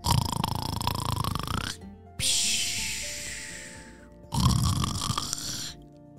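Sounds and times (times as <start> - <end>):
exaggerated cartoon snoring of a fish with bubbles: 0.0 - 5.8
long airy whistle: 2.2 - 4.0.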